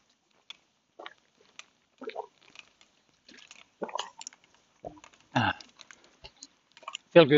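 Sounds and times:
gulping gazpacho and swallowing: 1.0s - 1.2s, 2.0s - 2.5s, 3.8s - 4.2s, 4.8s - 6.0s
speech: 7.2s - 7.3s.

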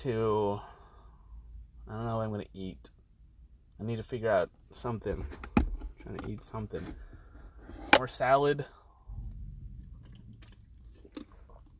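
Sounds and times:
speech: 0.0s - 0.8s, 1.8s - 3.0s, 3.8s - 7.1s, 7.7s - 8.8s
low rumble: 8.8s - 11.7s
person drinking water with soft gulps and mouth clicks: 9.2s - 11.7s.

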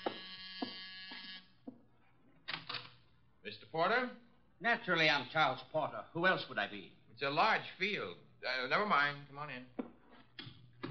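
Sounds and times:
harsh electric door buzzer: 0.0s - 1.6s
speech: 3.7s - 9.8s.

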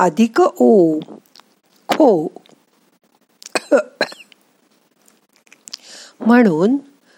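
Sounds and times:
speech: 0.0s - 1.1s, 2.0s - 2.4s, 3.7s - 4.1s, 6.2s - 6.9s
person coughing: 3.5s - 4.3s
faint breathy noise: 5.7s - 6.2s, 7.0s - 7.1s.

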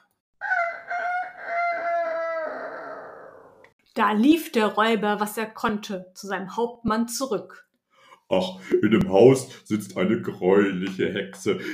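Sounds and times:
rooster crowing from a beam: 0.4s - 3.7s
speech: 4.0s - 7.6s, 8.3s - 11.7s.

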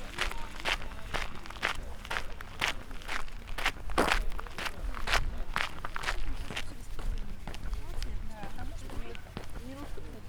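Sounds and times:
footsteps crunching on gravel in a park in Ljubljana: 0.0s - 10.2s
low rumble of traffic: 0.0s - 10.2s
murmur of voices: 0.0s - 10.2s.

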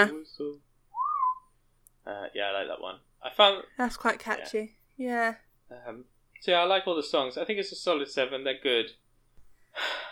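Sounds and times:
speech: 0.0s - 0.6s, 2.1s - 9.0s, 9.8s - 10.0s
person whistling a song tune: 1.0s - 1.5s.

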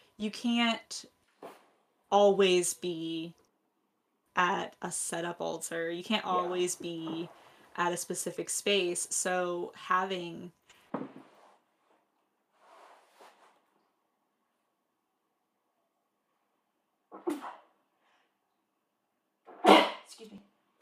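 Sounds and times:
speech: 0.2s - 3.4s, 4.4s - 10.6s
person sneezing: 19.5s - 20.1s.

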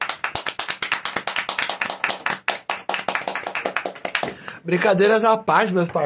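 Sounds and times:
steady rapid hand clapping: 0.0s - 4.5s
speech: 4.6s - 6.0s.

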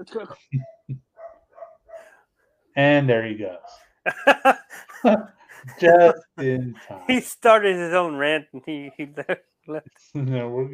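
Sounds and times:
speech: 0.0s - 1.0s, 2.8s - 10.7s
dog barking: 0.6s - 2.1s
laughter: 4.1s - 9.4s
human voice: 4.2s - 7.2s, 8.4s - 9.4s, 10.2s - 10.7s.

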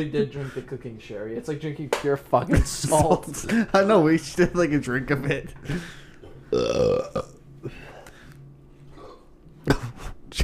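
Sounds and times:
speech: 0.0s - 7.3s
man grunting: 6.5s - 7.3s
man burping loudly: 6.5s - 7.8s.

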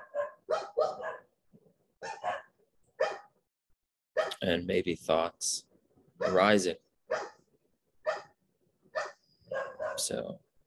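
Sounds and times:
dog barking: 0.0s - 1.4s, 2.0s - 3.4s, 4.2s - 4.4s, 6.2s - 10.2s
speech: 4.4s - 6.8s, 10.1s - 10.5s.

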